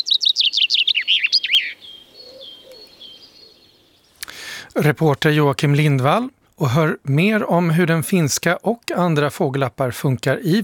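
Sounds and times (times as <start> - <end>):
faint thin bird notes: 0.0 - 4.4
common chaffinch song with descending trill: 0.0 - 10.6
speech: 4.8 - 10.6.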